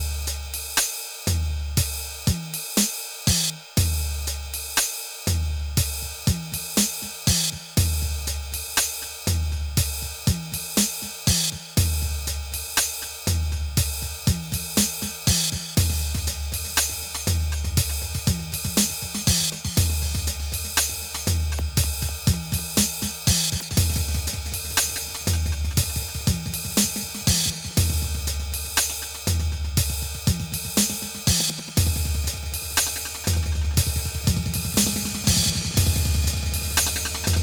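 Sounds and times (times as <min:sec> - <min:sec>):
drum with delay effect on a Korg NTS-3: 0:00.0 - 0:37.4.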